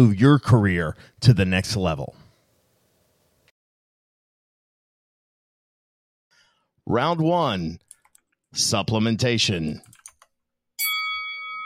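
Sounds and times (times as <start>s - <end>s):
speech: 0.0s - 2.2s, 6.9s - 7.8s, 8.5s - 9.9s
single bright bell strike to start a round: 10.8s - 11.6s.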